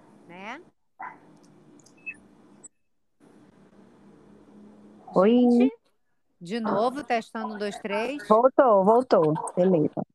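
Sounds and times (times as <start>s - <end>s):
dogs barking at a house: 1.0s - 1.3s, 6.6s - 7.9s
speech: 5.2s - 5.8s, 6.4s - 10.1s.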